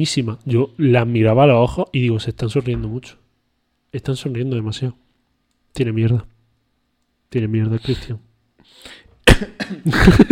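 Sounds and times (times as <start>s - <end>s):
speech: 0.0s - 3.2s, 3.9s - 5.0s, 5.8s - 6.3s, 7.3s - 10.3s
person coughing close against the microphone: 9.2s - 10.3s.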